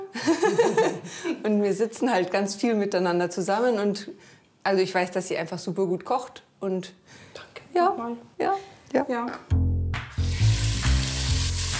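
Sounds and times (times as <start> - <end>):
speech: 0.3 - 9.6
finely diced lamb hearts frying in clarified butter: 10.2 - 11.7.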